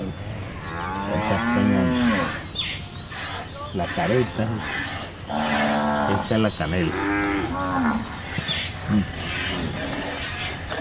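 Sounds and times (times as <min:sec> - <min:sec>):
birds twittering: 0:00.0 - 0:10.7
cow mooing: 0:00.6 - 0:02.4, 0:04.0 - 0:08.1
speech: 0:03.8 - 0:05.5, 0:06.1 - 0:07.2, 0:08.9 - 0:09.3.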